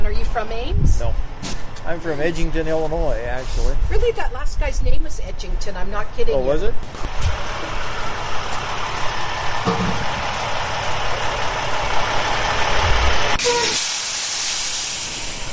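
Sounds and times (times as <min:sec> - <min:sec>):
speech: 0:00.4 - 0:07.7
large beer delivery truck engine idling: 0:06.9 - 0:15.5
brief bright hiss: 0:13.4 - 0:15.5.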